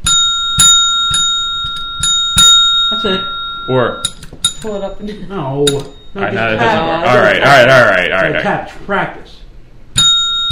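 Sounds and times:
small bell struck as a gong: 0:00.0 - 0:04.7, 0:05.6 - 0:06.2, 0:10.0 - 0:10.5
speech: 0:03.0 - 0:09.4.

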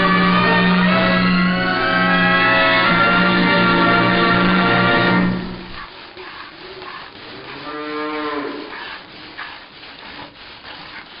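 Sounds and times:
cows mooing during milking: 0:00.0 - 0:05.6, 0:07.2 - 0:08.9
barnyard background: 0:00.0 - 0:11.1.

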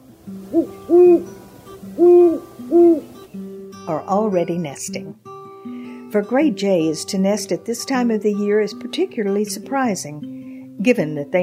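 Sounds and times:
great horned owl hooting: 0:00.4 - 0:03.2
speech: 0:00.5 - 0:01.4, 0:02.0 - 0:05.3, 0:06.1 - 0:11.4.

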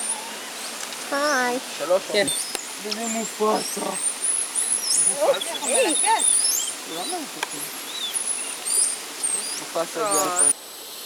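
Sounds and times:
swarm of insects buzzing: 0:00.0 - 0:11.0
speech: 0:01.1 - 0:04.1, 0:05.1 - 0:07.8, 0:09.6 - 0:10.6
thin chirps and whistles: 0:02.1 - 0:10.6.

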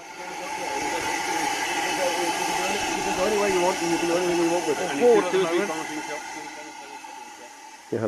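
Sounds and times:
early steam locomotive replica hissing steam: 0:00.0 - 0:08.0
indistinct voices murmuring: 0:00.0 - 0:08.0
speech: 0:03.8 - 0:05.9.

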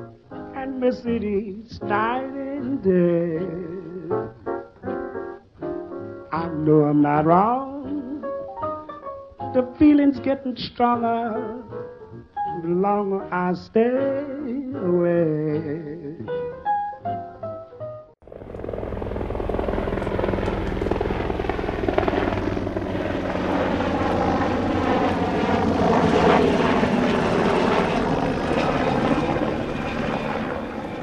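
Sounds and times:
speech: 0:00.0 - 0:04.4, 0:06.3 - 0:07.6, 0:09.5 - 0:11.7, 0:12.6 - 0:16.0
music: 0:00.0 - 0:18.6, 0:19.2 - 0:31.0
helicopter flying overhead with rotor thrumming and engine droning: 0:18.2 - 0:31.0.

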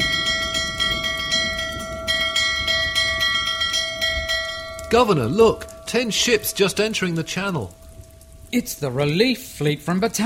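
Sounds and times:
castle bell ringing: 0:00.0 - 0:07.3
heavy monsoon rain: 0:00.0 - 0:10.2
speech: 0:04.9 - 0:07.8, 0:08.5 - 0:10.2.

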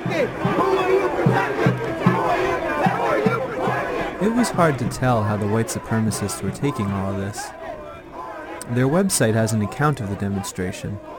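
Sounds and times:
angry protest crowd in Boston shouting at police: 0:00.0 - 0:11.1
speech: 0:04.4 - 0:07.6, 0:08.7 - 0:11.1.

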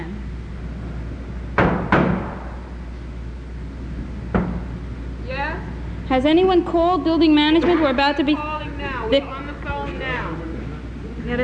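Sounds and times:
low rumble: 0:00.0 - 0:11.4
heavy banging on a door: 0:01.6 - 0:02.6, 0:04.3 - 0:04.7
speech: 0:06.1 - 0:08.5, 0:09.1 - 0:09.4.

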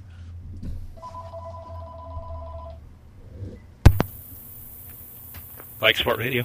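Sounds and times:
telephone ringing with an electronic tone: 0:01.0 - 0:02.8
telephone receiver being picked up: 0:03.9 - 0:04.2.

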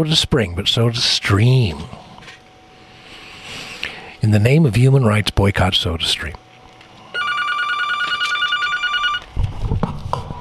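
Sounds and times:
speech: 0:00.0 - 0:02.0, 0:04.2 - 0:06.4
telephone ringing with a bright electronic trill: 0:07.1 - 0:09.3.

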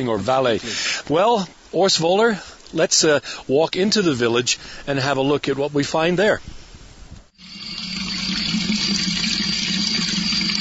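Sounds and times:
speech: 0:00.0 - 0:06.6
running water splashing from a fountain in a mountain village: 0:07.7 - 0:10.6.

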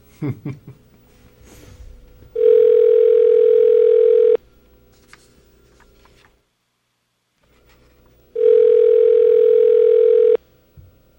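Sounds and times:
faint room noise: 0:00.0 - 0:11.1
telephone ringback tone on outgoing call to a cell phone: 0:02.4 - 0:04.4, 0:08.4 - 0:10.4.

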